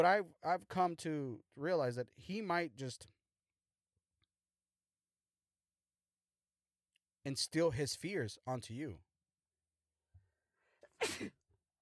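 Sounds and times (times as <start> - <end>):
speech: 0.0 - 3.2, 7.2 - 9.1, 11.0 - 11.4
person sneezing: 10.9 - 11.4.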